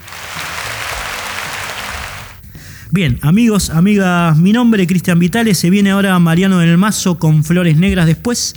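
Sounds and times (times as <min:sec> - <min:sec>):
applause from a group: 0:00.0 - 0:02.4
speech: 0:02.9 - 0:08.5.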